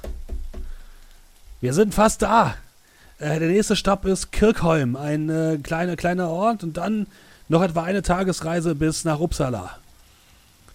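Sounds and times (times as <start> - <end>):
dull heavy knocks on a roof: 0.0 - 0.8
speech: 1.6 - 2.6, 3.2 - 9.8.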